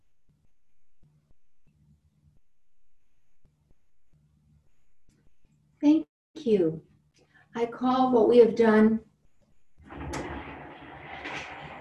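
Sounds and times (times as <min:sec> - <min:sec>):
speech: 0:06.4 - 0:06.9, 0:07.6 - 0:09.1
heavy chair dragged across a hard floor: 0:09.8 - 0:11.7.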